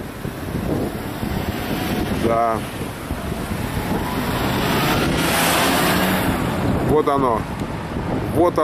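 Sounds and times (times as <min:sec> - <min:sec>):
strong coastal wind buffeting the microphone: 0:00.0 - 0:08.6
speech: 0:02.3 - 0:02.8, 0:07.0 - 0:07.6, 0:08.4 - 0:08.6.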